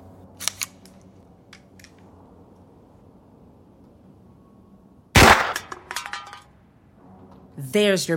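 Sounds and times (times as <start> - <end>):
gunshot fired at a tin can: 5.2 - 5.7.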